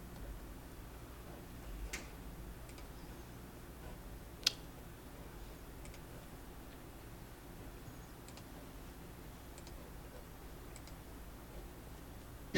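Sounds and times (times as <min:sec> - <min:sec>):
steady low room hum: 0:00.0 - 0:12.5
computer mouse clicks: 0:01.9 - 0:02.9, 0:04.4 - 0:04.6, 0:05.8 - 0:06.1, 0:08.2 - 0:08.5, 0:09.5 - 0:09.8, 0:10.7 - 0:11.0.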